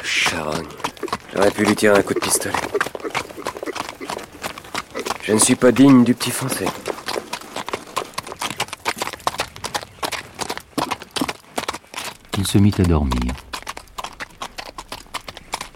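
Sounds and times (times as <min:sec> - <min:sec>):
horse hooves clip-clopping: 0:00.0 - 0:15.7
speech: 0:00.3 - 0:03.2, 0:05.3 - 0:06.9, 0:12.4 - 0:13.5.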